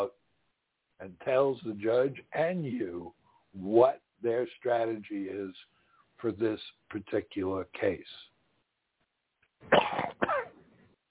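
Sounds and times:
speech: 0:01.0 - 0:08.2, 0:09.6 - 0:10.0
harsh person coughing: 0:09.7 - 0:10.6.

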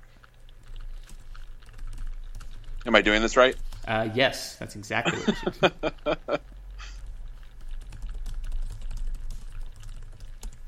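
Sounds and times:
low steady hum: 0:00.0 - 0:10.6
typing on a computer keyboard: 0:00.5 - 0:03.8, 0:07.0 - 0:10.6
speech: 0:02.8 - 0:06.5
laughter: 0:05.0 - 0:06.4.

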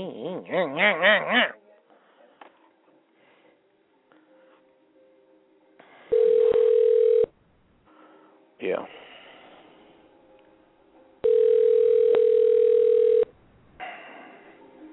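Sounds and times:
speech: 0:00.0 - 0:01.6
warbling electronic phone tone: 0:06.1 - 0:07.3, 0:11.2 - 0:13.3.

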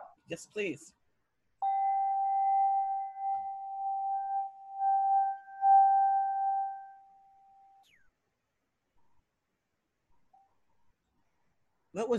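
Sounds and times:
speech: 0:00.3 - 0:01.0, 0:12.0 - 0:12.1
crystal singing bowl ringing: 0:01.6 - 0:07.8.

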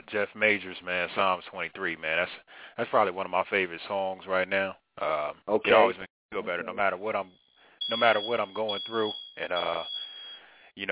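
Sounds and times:
speech: 0:00.1 - 0:10.0, 0:10.8 - 0:10.9
smoke alarms beeping in a house: 0:07.3 - 0:10.6.

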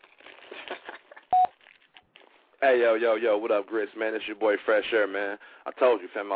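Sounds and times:
voicemail tone electronic beep: 0:01.3 - 0:01.5
speech: 0:02.6 - 0:06.3.

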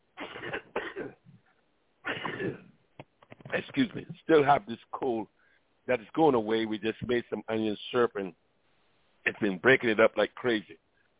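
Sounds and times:
person clearing throat: 0:00.2 - 0:01.2, 0:02.1 - 0:02.7
speech: 0:03.6 - 0:08.4, 0:09.2 - 0:10.8.

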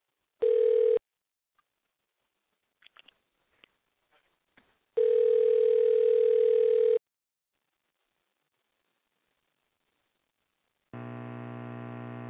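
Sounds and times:
low buzzy telephone tone: 0:00.4 - 0:01.0, 0:05.0 - 0:07.0, 0:11.0 - 0:12.2
telephone dial tone: 0:00.4 - 0:01.0, 0:05.0 - 0:07.0.

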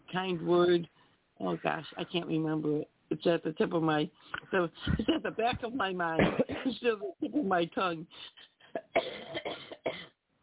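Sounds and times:
speech: 0:00.1 - 0:09.4
person coughing in harsh bursts: 0:06.2 - 0:07.4, 0:08.7 - 0:10.2.

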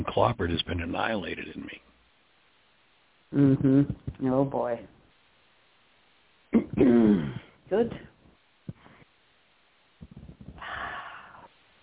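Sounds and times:
speech: 0:00.1 - 0:01.8, 0:03.3 - 0:05.0, 0:06.8 - 0:08.1
deep spontaneous breath: 0:10.2 - 0:11.5.

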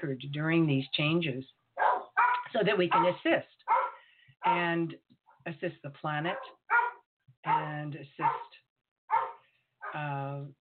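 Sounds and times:
speech: 0:00.0 - 0:01.6, 0:02.5 - 0:03.6, 0:04.4 - 0:06.8, 0:07.4 - 0:08.6, 0:09.9 - 0:10.5
dog barking: 0:01.8 - 0:04.7, 0:06.3 - 0:10.0.

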